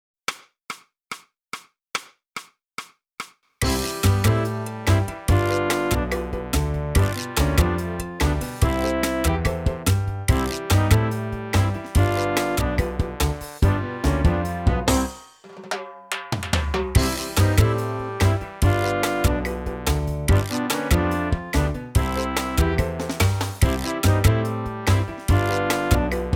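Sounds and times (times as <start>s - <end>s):
calypso flute music: 3.6s - 15.2s, 17.0s - 26.3s.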